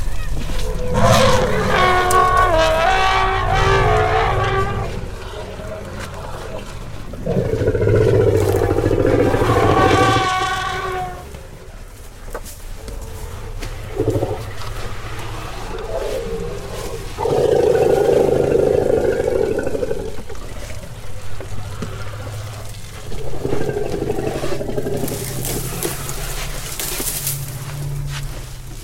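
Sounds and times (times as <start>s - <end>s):
deep sputtering rumble: 0.0s - 28.8s
brassy trumpeting blasts: 0.6s - 5.2s, 8.6s - 11.4s.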